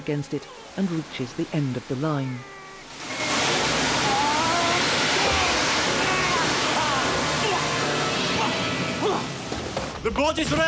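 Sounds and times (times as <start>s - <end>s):
speech: 0.0s - 2.6s, 10.0s - 10.6s
high-pressure jet of water spewing out of a porthole: 1.7s - 9.8s.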